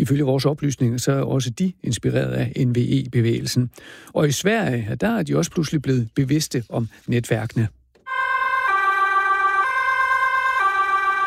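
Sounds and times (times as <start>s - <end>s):
speech: 0.0s - 7.8s
emergency vehicle siren alternating between two tones: 8.0s - 11.2s.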